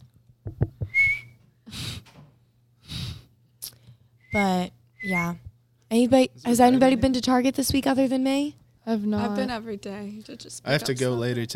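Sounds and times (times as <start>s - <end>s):
person whistling a high note with their mouth: 0.8s - 1.4s, 4.3s - 5.4s
speech: 4.4s - 11.5s.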